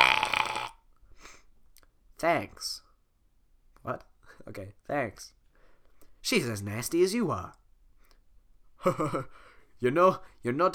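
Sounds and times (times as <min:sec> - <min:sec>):
loud drawn-out throaty belch: 0:00.0 - 0:00.8
speech: 0:02.2 - 0:02.8, 0:03.8 - 0:05.4, 0:06.2 - 0:07.6, 0:08.8 - 0:10.7.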